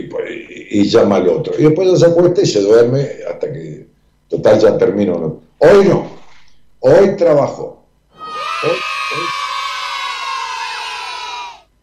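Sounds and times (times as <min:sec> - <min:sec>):
speech: 0:00.2 - 0:06.2, 0:06.8 - 0:07.8, 0:08.6 - 0:09.4
crowd cheering with excited shouts and whoops: 0:08.2 - 0:11.7.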